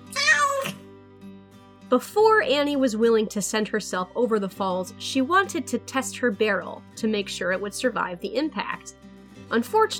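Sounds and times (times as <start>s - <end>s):
cat meowing: 0.0s - 0.8s
speech: 1.9s - 9.9s.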